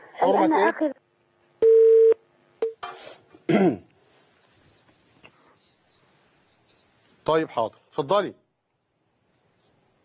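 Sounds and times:
speech: 0.2 - 1.0, 3.6 - 3.9, 7.3 - 8.4
telephone line tone beeps after a call drops: 1.6 - 2.8.

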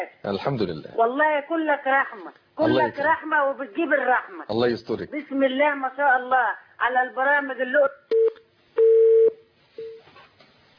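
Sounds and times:
speech: 0.0 - 8.3
telephone tone after a phone call drops: 8.1 - 10.0.

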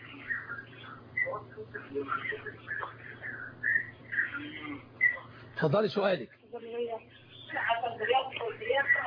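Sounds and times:
low constant hum: 0.0 - 9.0
television sound with indistinct voices: 0.0 - 9.0
speech: 1.3 - 5.0, 5.6 - 9.0.

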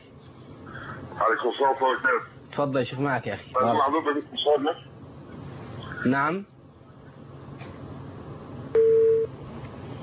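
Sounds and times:
speech: 1.2 - 4.9, 6.0 - 6.5
telephone busy tone after a phone call disconnects: 8.8 - 9.3.

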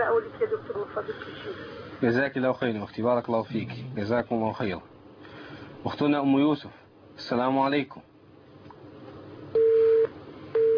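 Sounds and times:
speech: 0.0 - 4.9, 5.8 - 8.1
busy tone on a telephone line after a call is disconnected: 9.6 - 10.7.

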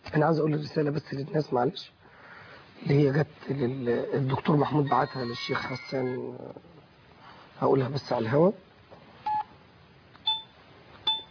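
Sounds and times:
faint hiss: 0.0 - 11.2
speech: 0.2 - 2.0, 2.8 - 6.8, 7.6 - 8.7
short electronic telephone keypad dialing tones: 10.2 - 10.5, 11.1 - 11.2.

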